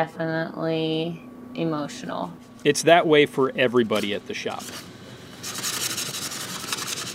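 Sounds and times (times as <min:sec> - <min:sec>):
speech: 0:00.0 - 0:04.9
sandpaper rubbing over a wooden casket: 0:05.4 - 0:07.1.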